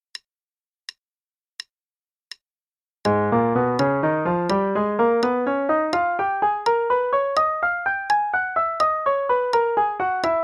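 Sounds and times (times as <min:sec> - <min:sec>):
G-sharp melodic minor scale over 3 octaves: 0:03.1 - 0:10.4.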